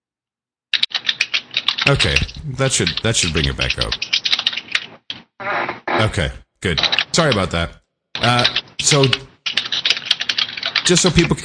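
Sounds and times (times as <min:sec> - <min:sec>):
typing a social media post on a computer keyboard: 0:00.8 - 0:05.2, 0:06.7 - 0:07.5, 0:08.2 - 0:11.4
speech: 0:01.8 - 0:04.3, 0:06.0 - 0:09.3, 0:10.9 - 0:11.4.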